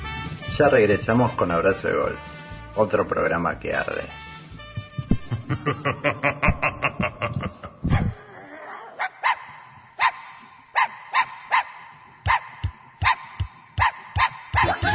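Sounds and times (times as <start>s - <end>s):
speech: 0.6s - 4.2s, 5.6s - 6.5s
laughter: 5.2s - 8.1s
small dogs barking and yipping: 8.8s - 14.8s.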